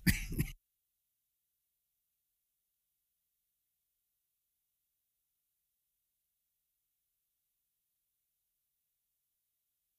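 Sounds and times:
rough coughing: 0.0 - 0.6
throat clearing: 0.0 - 0.6.

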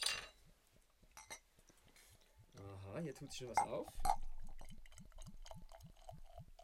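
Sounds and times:
speech: 3.0 - 4.2
beer glugging from a bottle into a glass: 3.2 - 6.6.

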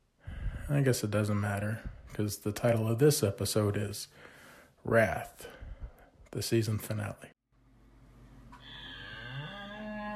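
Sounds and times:
speech: 0.7 - 5.6, 6.3 - 7.3
cow mooing: 8.7 - 10.1.

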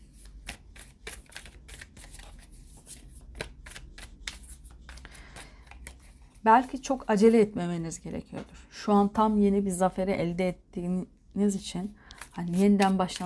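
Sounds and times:
cards being shuffled and picked during a card reading: 0.2 - 6.8, 12.1 - 13.2
speech: 6.4 - 13.2.

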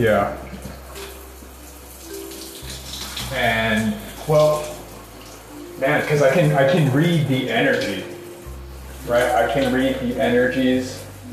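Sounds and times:
speech: 0.0 - 0.5, 3.3 - 4.8, 5.8 - 8.1, 9.0 - 11.0
shower water running: 0.0 - 11.3.

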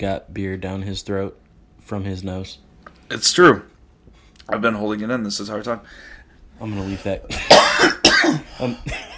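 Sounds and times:
speech: 0.0 - 3.7, 4.5 - 9.1
person coughing: 7.3 - 9.1.

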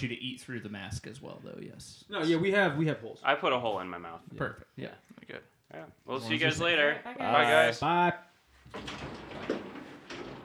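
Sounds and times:
speech: 0.0 - 9.6
sliding door rumbling along its track: 8.7 - 10.4.

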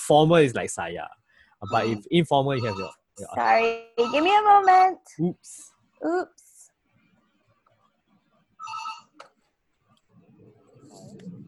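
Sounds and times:
speech: 0.1 - 6.4
landline telephone ringing in electronic trilling bursts: 1.6 - 3.0, 8.6 - 9.2.

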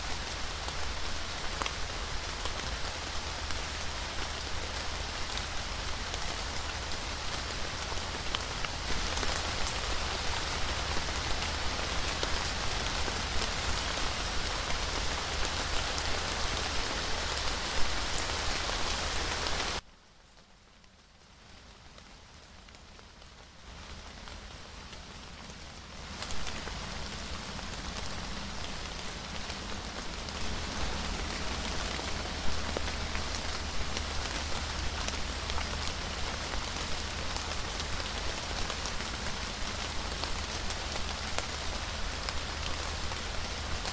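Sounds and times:
steady dense rain pattering on a surface: 0.0 - 43.9.

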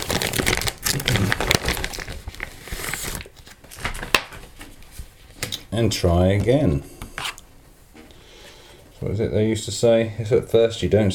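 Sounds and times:
sheet of photographic paper crinkling and rustling: 0.0 - 5.1
speech: 5.8 - 7.0, 9.0 - 11.1.

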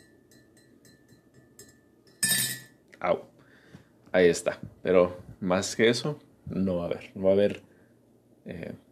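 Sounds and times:
teaspoon clinking against a coffee cup: 0.0 - 2.8
speech: 3.0 - 3.3, 4.1 - 7.6, 8.5 - 8.7.

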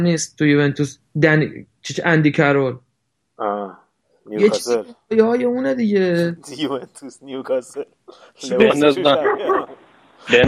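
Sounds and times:
speech: 0.0 - 2.8, 3.4 - 10.4
laughter: 4.4 - 4.9, 6.4 - 7.8, 8.4 - 10.4
dog barking in a flurry of yelps: 9.0 - 9.8.

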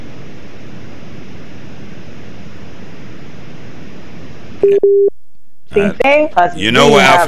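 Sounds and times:
noisy phone-line audio: 0.1 - 7.2
speech: 4.6 - 5.1, 5.8 - 7.2
steady electronic beeps: 4.6 - 5.1.

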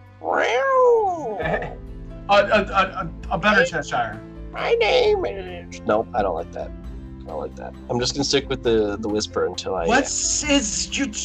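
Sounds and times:
person imitating a cat meowing: 0.2 - 1.8, 4.6 - 5.7
speech: 2.3 - 11.2.

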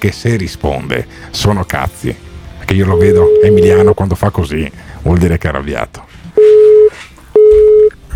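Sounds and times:
speech: 0.0 - 6.1
telephone line tone beeps: 2.9 - 4.0, 6.4 - 8.0.

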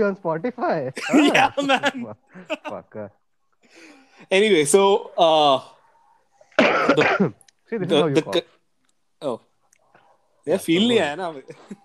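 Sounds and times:
speech: 0.0 - 5.8, 6.6 - 8.6, 9.2 - 9.5, 10.4 - 11.8
man coughing: 1.0 - 2.1, 6.6 - 7.4.

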